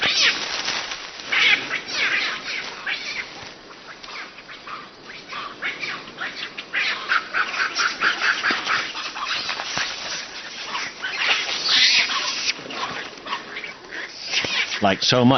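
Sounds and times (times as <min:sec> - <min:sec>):
young macaques squealing and chattering while playing rough and tumble: 0:00.0 - 0:15.0.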